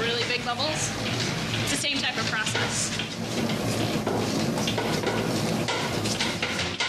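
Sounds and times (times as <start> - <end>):
speech: 0.5 - 1.2, 1.8 - 4.4
bread dough worked by hand slapping against a bowl: 2.4 - 6.8.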